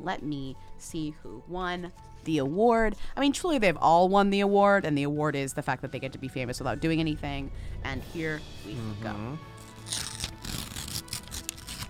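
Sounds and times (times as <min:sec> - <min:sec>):
speech: 0:00.0 - 0:10.2
paper envelope ripped open gently at an award reveal: 0:09.6 - 0:11.8.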